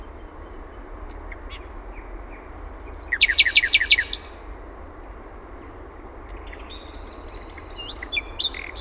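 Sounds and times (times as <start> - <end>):
common nightingale singing: 0.0 - 4.5, 6.3 - 8.7
faint background hum: 0.0 - 8.7.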